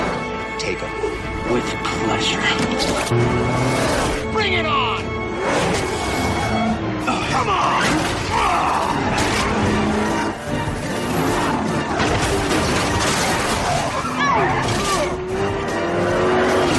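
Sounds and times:
race car engines roaring: 0.0s - 16.7s
speech: 0.6s - 6.0s
race car tires squealing and skidding: 5.4s - 16.7s.

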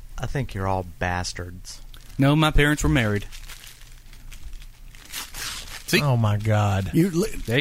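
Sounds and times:
low hum: 0.0s - 7.6s
speech: 0.2s - 3.5s, 5.9s - 7.6s
man crinkling and ripping a paper food wrapper while eating: 1.9s - 7.6s.

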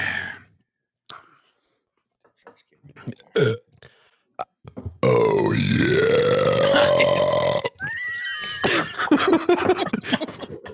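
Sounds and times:
speech: 2.5s - 3.6s
loud drawn-out burp: 3.1s - 3.6s, 5.0s - 7.8s
laughter: 8.6s - 10.7s.

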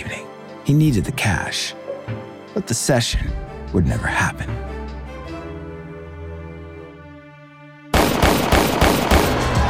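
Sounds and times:
speech: 0.7s - 4.8s
gunshots from a pair of 9mm pistols in a studio hallway: 8.0s - 9.6s.

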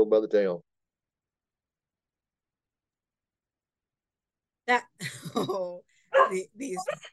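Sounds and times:
speech: 0.0s - 0.7s, 4.7s - 7.1s
dogs barking: 6.1s - 7.1s.

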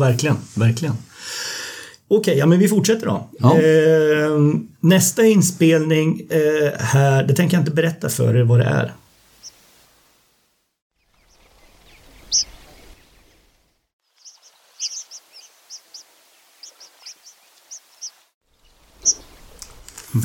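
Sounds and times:
speech: 0.0s - 1.3s, 2.1s - 9.0s
young fledged horned lark calls in Mongolia: 11.0s - 13.2s, 14.2s - 19.6s.

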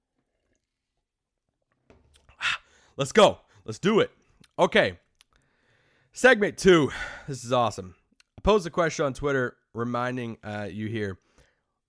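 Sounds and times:
person sipping water: 0.1s - 2.8s
loud gulp of water: 2.2s - 2.8s
speech: 3.0s - 5.0s, 6.1s - 11.3s.

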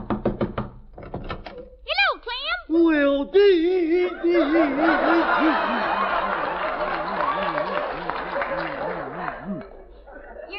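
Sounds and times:
knocking on the wooden door of a house: 0.0s - 1.4s
speech: 2.9s - 5.9s
laughter: 3.7s - 10.5s.

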